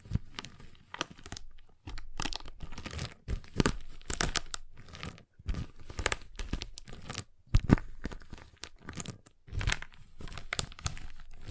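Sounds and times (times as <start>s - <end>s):
crinkling wrapper of a giant chocolate bar: 0.0s - 11.5s
giant chocolate bar cracking and snapping: 1.0s - 11.5s.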